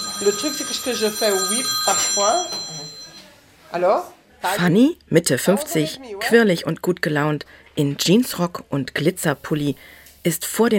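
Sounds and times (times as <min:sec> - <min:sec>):
telephone ringing with steady electronic tone: 0:00.0 - 0:03.4
speech: 0:00.2 - 0:02.7, 0:03.7 - 0:10.7.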